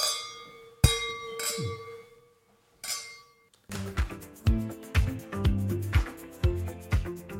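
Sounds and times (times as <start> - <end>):
wine glasses clinking in a toast: 0.0 - 3.5
rhythmic music: 3.7 - 7.3.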